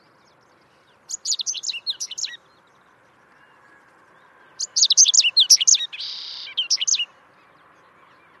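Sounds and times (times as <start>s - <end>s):
Correndera pipit song: 0.0s - 3.7s, 4.5s - 8.3s.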